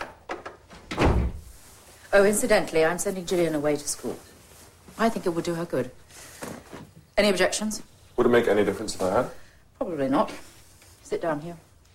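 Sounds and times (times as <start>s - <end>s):
door swinging shut with a heavy thud: 0.0s - 1.5s
speech: 2.1s - 4.3s, 5.0s - 6.3s, 7.2s - 9.4s, 10.0s - 10.5s, 11.1s - 11.7s.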